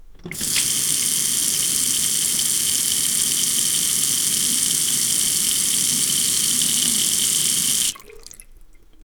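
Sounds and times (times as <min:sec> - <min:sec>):
sink faucet running: 0:00.1 - 0:09.0.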